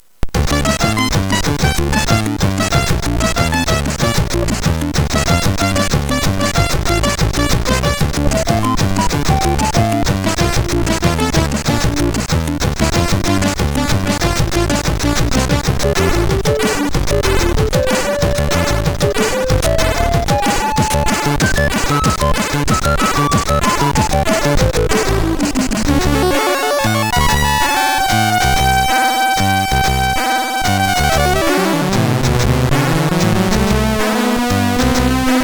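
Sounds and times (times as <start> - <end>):
MOS6581 SID sound chip: 0.2 - 35.3.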